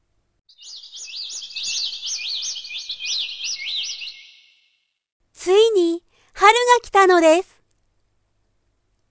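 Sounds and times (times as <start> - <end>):
skylark singing: 0.6 - 4.5
speech: 6.5 - 7.5.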